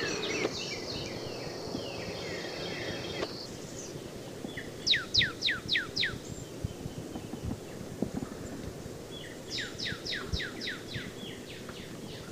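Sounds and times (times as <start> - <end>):
Northern cardinal song: 0.0 - 3.8, 4.6 - 6.8, 9.2 - 12.3
background noise: 0.0 - 12.3.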